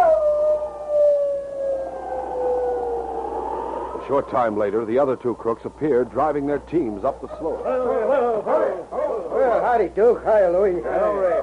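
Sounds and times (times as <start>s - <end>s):
man imitating a shrill wolf howl: 0.0s - 4.6s
speech: 4.1s - 11.4s.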